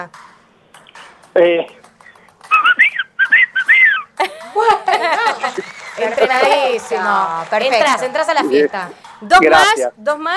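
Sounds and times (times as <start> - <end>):
speech: 1.4 - 1.8, 4.2 - 10.3
loud two-finger whistle: 2.5 - 4.2
people laughing: 2.5 - 8.9
people chattering: 2.5 - 10.3.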